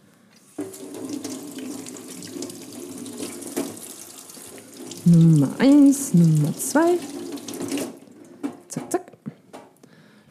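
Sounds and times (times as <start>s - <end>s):
tap water running as tomatoes are washed under a faucet: 0.3s - 9.0s
speech: 5.0s - 7.2s.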